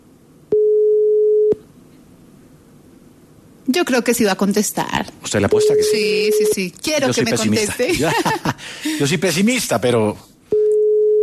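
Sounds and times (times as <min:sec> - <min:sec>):
faint low hiss: 0:00.0 - 0:11.2
telephone ringback tone while dialing a cellphone: 0:00.6 - 0:01.6, 0:10.6 - 0:11.2
speech: 0:03.8 - 0:10.3
laughter: 0:07.4 - 0:09.2.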